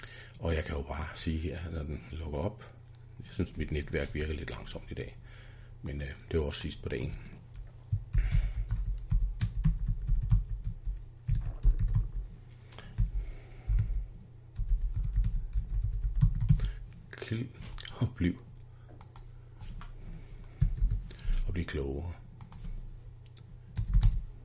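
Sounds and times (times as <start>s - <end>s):
steady low hum: 0.0s - 24.4s
speech: 0.4s - 7.4s, 17.3s - 18.5s, 21.6s - 22.2s
computer keyboard keys being typed on while writing a message: 8.1s - 12.3s, 14.6s - 16.7s, 20.6s - 21.1s, 23.8s - 24.2s.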